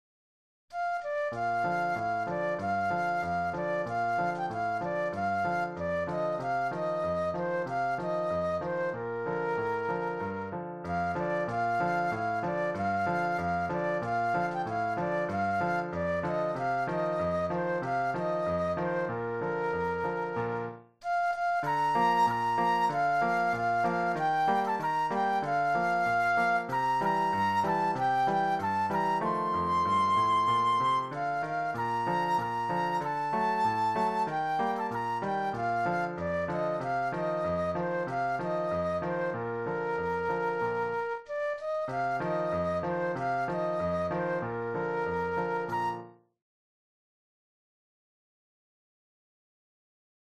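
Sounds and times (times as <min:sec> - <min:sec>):
patriotic flute solo: 0:00.7 - 0:46.3.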